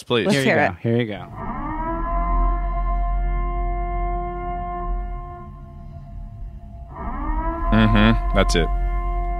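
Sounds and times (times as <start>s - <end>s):
speech: 0.0s - 1.6s, 7.8s - 8.8s
long steady siren sounding at sundown: 1.2s - 9.3s.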